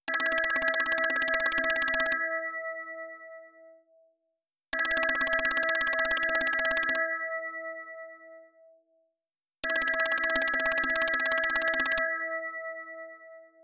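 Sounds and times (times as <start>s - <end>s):
telephone bell: 0.1s - 2.6s, 4.8s - 7.4s, 9.6s - 13.5s.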